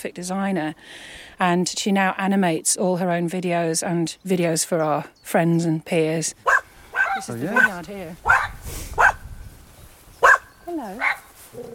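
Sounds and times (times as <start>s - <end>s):
speech: 0.0s - 6.6s, 7.2s - 9.0s, 10.7s - 11.7s
dog barking: 6.4s - 9.2s, 10.2s - 11.7s.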